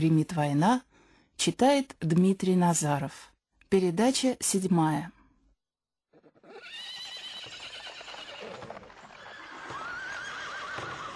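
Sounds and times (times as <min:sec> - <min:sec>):
speech: 0:00.0 - 0:05.2
horses snorting and whinnying: 0:06.1 - 0:11.1.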